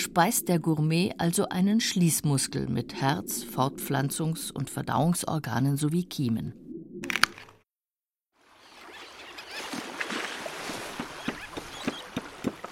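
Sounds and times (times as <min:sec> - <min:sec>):
speech: 0:00.0 - 0:06.6
wet sloshing of oyster net sack hauled into a boat: 0:08.4 - 0:12.7.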